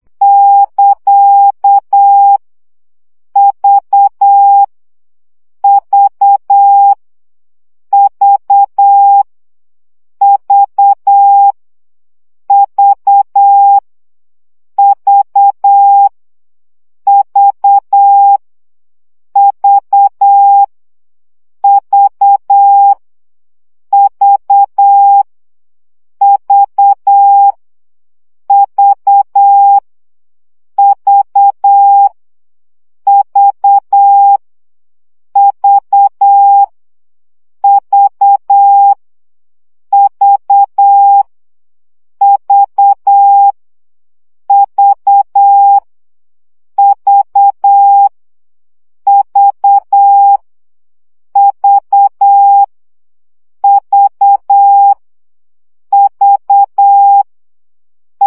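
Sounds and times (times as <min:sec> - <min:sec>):
Morse code practice beeps: 0:00.2 - 0:02.4, 0:03.4 - 0:04.7, 0:05.6 - 0:07.0, 0:08.0 - 0:09.3, 0:10.2 - 0:11.6, 0:12.5 - 0:13.8, 0:14.8 - 0:16.1, 0:17.1 - 0:18.4, 0:19.4 - 0:20.7, 0:21.6 - 0:23.0, 0:23.9 - 0:25.3, 0:26.2 - 0:27.5, 0:28.5 - 0:29.8, 0:30.8 - 0:32.1, 0:33.1 - 0:34.4, 0:35.4 - 0:36.7, 0:37.6 - 0:39.0, 0:39.9 - 0:41.3, 0:42.2 - 0:43.6, 0:44.5 - 0:45.8, 0:46.8 - 0:48.1, 0:49.1 - 0:50.4, 0:51.4 - 0:52.7, 0:53.6 - 0:55.0, 0:55.9 - 0:57.3.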